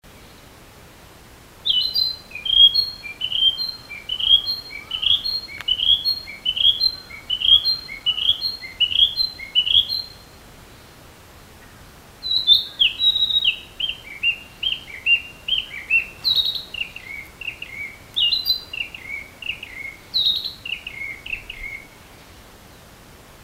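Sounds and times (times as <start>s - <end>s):
Narcissus flycatcher singing: 1.6s - 10.3s, 12.2s - 22.0s.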